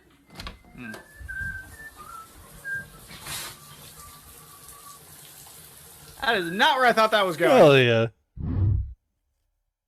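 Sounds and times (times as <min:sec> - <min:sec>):
person whistling a short tune: 0:00.6 - 0:05.0
speech: 0:06.3 - 0:08.2.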